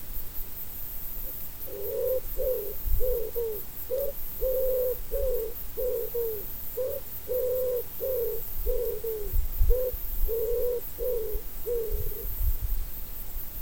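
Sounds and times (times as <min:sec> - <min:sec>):
common wood pigeon Columba palumbus typical call: 0:01.6 - 0:12.4.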